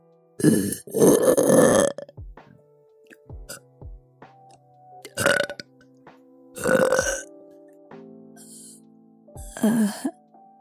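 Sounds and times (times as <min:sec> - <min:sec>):
speech: 0:00.4 - 0:01.7
loud deep guttural belches: 0:00.4 - 0:02.1, 0:05.1 - 0:05.7, 0:06.6 - 0:07.3, 0:09.5 - 0:10.1.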